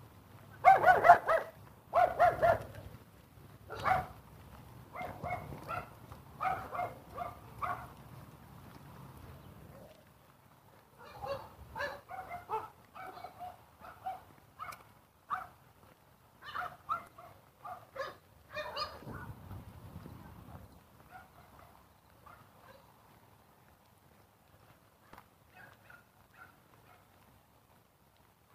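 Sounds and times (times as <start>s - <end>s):
dogs barking: 0.6s - 2.9s, 3.7s - 4.2s, 4.9s - 8.0s, 10.9s - 15.6s, 16.4s - 19.3s, 21.0s - 22.9s, 25.1s - 27.1s.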